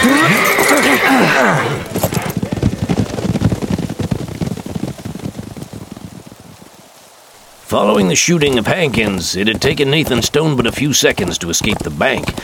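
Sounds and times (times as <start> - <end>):
horse whinnying: 0.0 - 2.5
horse hooves clattering: 0.0 - 12.4
speech: 7.8 - 12.4.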